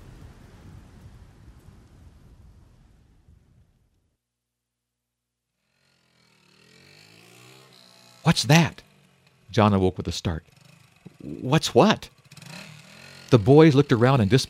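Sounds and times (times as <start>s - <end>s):
steady hissing rain on pine woods: 0.0s - 2.9s
speech: 8.2s - 8.9s, 9.5s - 10.6s, 11.2s - 12.2s, 13.3s - 14.4s.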